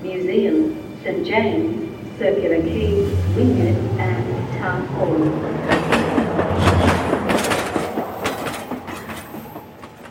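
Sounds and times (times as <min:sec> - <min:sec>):
speech: 0:00.0 - 0:06.7
commuter train rolling along rails heard from inside a carriage: 0:00.0 - 0:10.0
commuter train clickety-clack wheel beats: 0:05.6 - 0:10.0.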